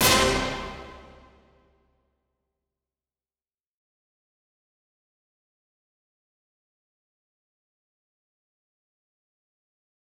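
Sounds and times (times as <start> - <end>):
hit sound effects: 0.0 - 1.6.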